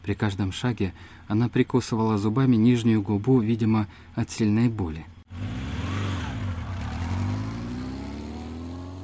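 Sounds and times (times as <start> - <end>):
speech: 0.0 - 5.5
small motorcycle engine starting and revving: 5.3 - 9.0.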